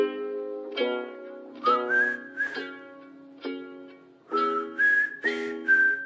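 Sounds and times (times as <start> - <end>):
plucked or strummed western-style backing: 0.0 - 6.0
clear whistled tune: 1.6 - 2.9, 4.3 - 6.0.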